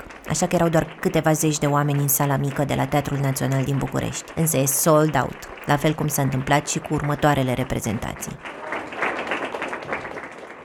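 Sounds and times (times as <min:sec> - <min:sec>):
theatre audience applause at a premiere: 0:00.0 - 0:10.6
speech: 0:00.3 - 0:08.6.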